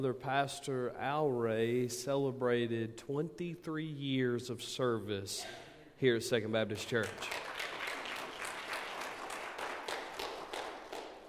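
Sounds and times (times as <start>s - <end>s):
speech: 0.0s - 7.4s
crowd applauding: 7.0s - 11.2s.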